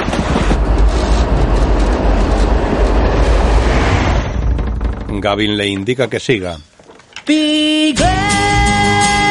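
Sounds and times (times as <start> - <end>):
train passing by a house: 0.0 - 4.5
speech: 5.2 - 9.2.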